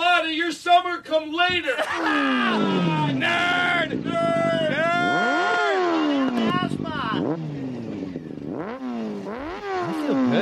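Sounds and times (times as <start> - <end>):
speech: 0.7 - 4.6
laughter: 1.6 - 3.3, 9.9 - 10.4
motorcycle engine idling and revving: 1.9 - 10.4.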